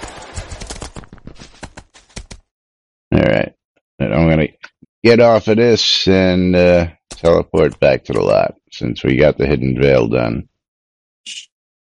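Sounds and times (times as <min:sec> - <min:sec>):
video game horse hooves clip-clopping: 0:00.0 - 0:02.4
speech: 0:05.0 - 0:10.5, 0:11.2 - 0:11.5.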